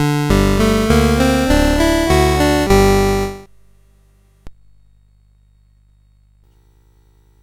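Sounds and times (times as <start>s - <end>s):
theme music on a CSG8580R5 sound chip: 0.0s - 3.4s.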